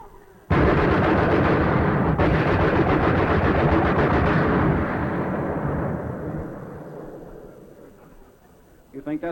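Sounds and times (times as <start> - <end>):
machine gun firing: 0.5 - 7.9
speech: 9.2 - 9.3.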